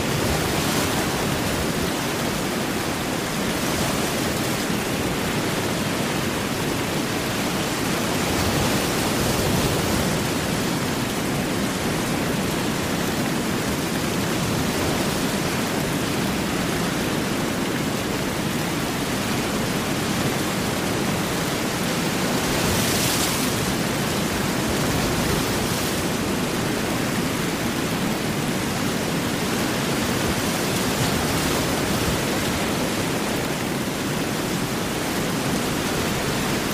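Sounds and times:
heavy rain: 0.0 - 36.7
ocean surf: 0.0 - 36.7.

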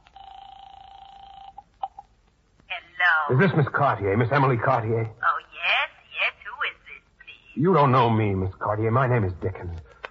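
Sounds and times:
steady electronic telephone line tone: 0.0 - 2.1
speech: 3.3 - 5.2, 7.6 - 9.9.

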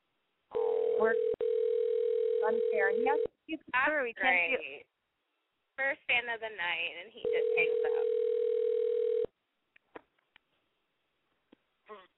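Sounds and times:
people talking: 0.5 - 1.4, 2.4 - 4.9, 5.8 - 8.2, 11.9 - 12.1
telephone dial tone after the caller hangs up: 0.6 - 3.3, 7.3 - 9.3.

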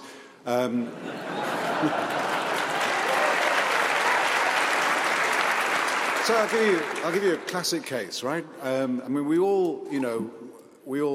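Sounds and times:
speech: 0.4 - 2.4, 6.3 - 11.1
laughter: 0.6 - 3.4
sustained applause from a sizable audience: 1.3 - 7.7.

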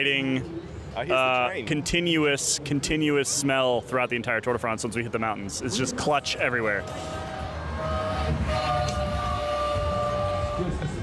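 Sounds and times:
speech: 0.0 - 7.3
outdoor crowd noise: 0.0 - 11.0
sustained horn-like tones: 6.5 - 11.0
train float in a race caravan rolling past: 6.6 - 11.0.

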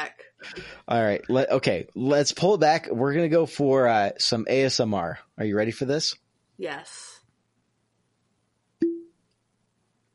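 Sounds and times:
speech: 0.0 - 7.1
cork popping from a rye whiskey bottle: 8.8 - 9.1
hollow ringing tone: 8.8 - 9.2.

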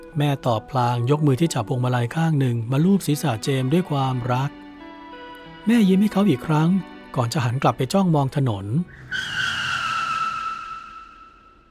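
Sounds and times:
speech: 0.2 - 4.6, 5.6 - 9.4
car tires skidding on pavement: 8.8 - 11.6.

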